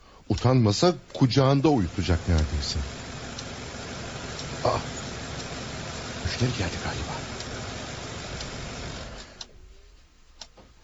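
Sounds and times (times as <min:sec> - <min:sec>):
speech: 0:00.3 - 0:03.0, 0:04.6 - 0:04.9, 0:06.3 - 0:07.3
sharp clicks: 0:00.3 - 0:09.5
car engine rumbling: 0:01.0 - 0:09.4.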